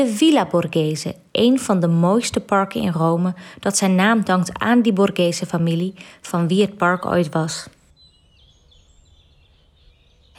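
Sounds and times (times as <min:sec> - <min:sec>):
speech: 0:00.0 - 0:07.8
birds chirping and whistling in Villa Borghese park in Rome on a sunny spring day: 0:07.0 - 0:10.3.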